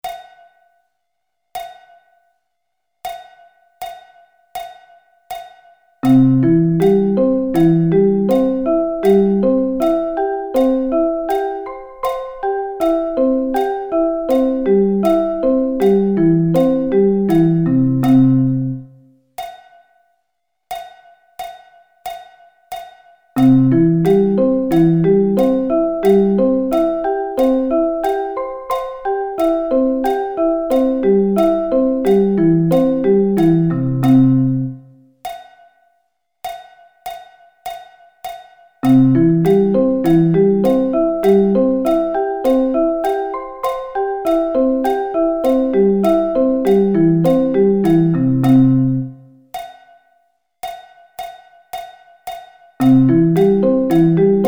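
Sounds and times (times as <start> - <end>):
C arpeggio inversions: 6.1 - 18.9, 23.4 - 34.9, 38.9 - 49.2, 52.8 - 54.4.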